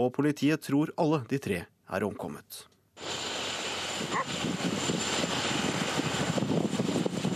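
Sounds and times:
speech: 0:00.0 - 0:03.2, 0:04.0 - 0:05.3
strong wind with blowing snow roaring across an open landscape: 0:03.0 - 0:07.3
gusty wind buffeting the microphone: 0:03.6 - 0:07.3.

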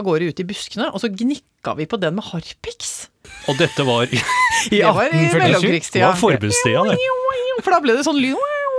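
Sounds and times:
speech: 0:00.0 - 0:08.6
person imitating the screech of a dying cat: 0:03.3 - 0:05.6
laughter: 0:03.3 - 0:07.2.

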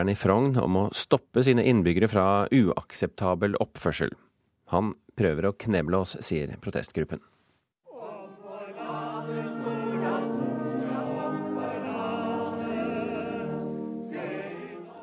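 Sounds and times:
speech: 0:00.0 - 0:07.4
protest song with sustained sung vocals over dense musical accompaniment: 0:07.9 - 0:15.0.

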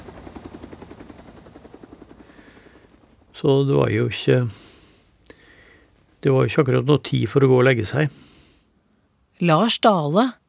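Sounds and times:
helicopter rotor thumping in a small open clearing: 0:00.0 - 0:04.9
continuous helicopter engine whine: 0:00.0 - 0:06.0
speech: 0:03.4 - 0:04.6, 0:06.2 - 0:08.3, 0:09.4 - 0:10.4.

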